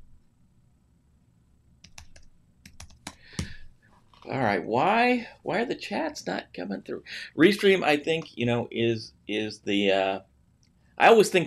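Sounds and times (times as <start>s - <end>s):
low steady hum: 0.0s - 11.4s
computer keyboard typing: 1.8s - 3.6s
speech: 4.2s - 10.3s, 11.0s - 11.4s.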